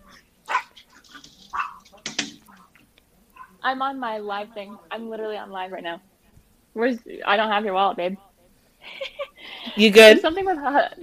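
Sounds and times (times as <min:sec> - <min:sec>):
dog barking and yipping: 0:00.1 - 0:02.1, 0:03.3 - 0:03.6
speech: 0:03.6 - 0:06.1, 0:06.8 - 0:08.3, 0:09.8 - 0:11.0.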